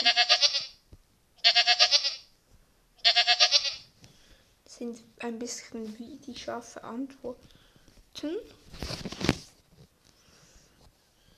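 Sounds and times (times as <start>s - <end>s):
speech: 0.0s - 0.5s, 4.8s - 7.6s, 8.2s - 9.3s
adult video game goat bleating: 0.0s - 0.8s, 1.4s - 2.3s, 3.0s - 3.9s.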